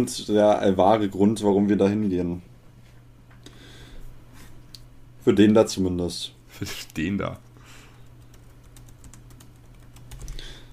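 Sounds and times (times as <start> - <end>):
speech: 0.0 - 2.5, 5.2 - 7.4
low steady hum: 0.0 - 10.7
rapid typing on a computer keyboard: 8.0 - 10.7.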